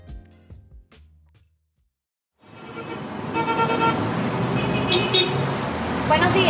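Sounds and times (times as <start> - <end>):
car horn tooting in Caracas Venezuela: 2.4 - 5.5
city street traffic engines rumbling in Caracas Venezuela heard from inside a bus: 2.4 - 6.4
speech: 6.1 - 6.4.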